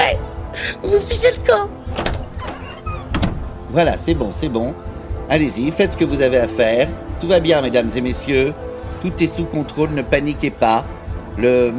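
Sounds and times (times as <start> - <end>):
speech: 0.7 - 1.8, 3.7 - 11.7
door banging and rattling shut: 1.9 - 3.7.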